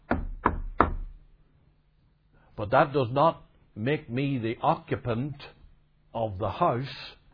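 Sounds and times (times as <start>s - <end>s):
firm knocks on a door: 0.0s - 1.2s
speech: 2.6s - 7.2s.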